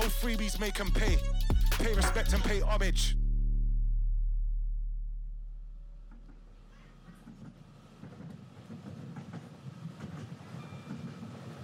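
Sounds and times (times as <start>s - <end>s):
deep droning tone: 0.0s - 7.0s
speech: 0.1s - 3.2s
clickety-clack of train wheels on rails: 7.0s - 11.6s
train rolling on rails: 7.2s - 11.6s.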